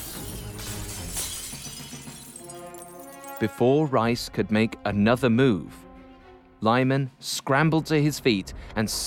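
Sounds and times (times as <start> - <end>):
glass office door shattering as a man crashes through: 0.0 - 3.4
tinkling scattering glass shards: 0.0 - 3.4
speech: 3.4 - 5.8, 6.6 - 9.0.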